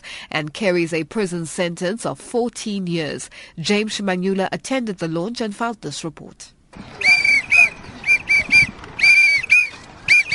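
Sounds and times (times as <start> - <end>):
speech: 0.3 - 6.6
low rumble of crowd noise: 6.8 - 10.3
protesters blowing whistles at a march: 7.0 - 10.3.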